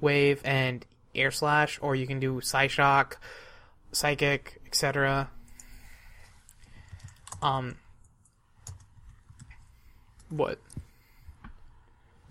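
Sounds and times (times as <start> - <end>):
speech: 0.0 - 5.4, 7.4 - 7.8, 10.3 - 10.8
typing on a computer keyboard: 6.5 - 10.9.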